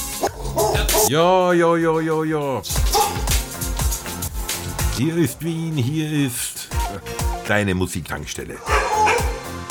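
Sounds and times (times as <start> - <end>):
dogs yapping barks: 0.2 - 1.1, 2.8 - 3.3, 8.6 - 9.6
speech: 1.1 - 3.3, 5.0 - 9.1.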